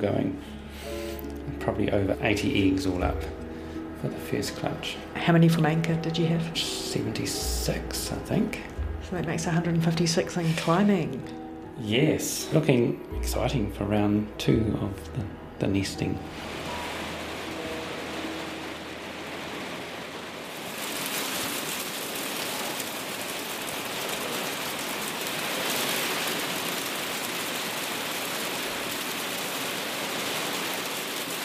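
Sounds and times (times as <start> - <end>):
speech: 0.0 - 3.4, 4.0 - 16.6
hail clattering in a brief hailstorm: 16.3 - 31.4.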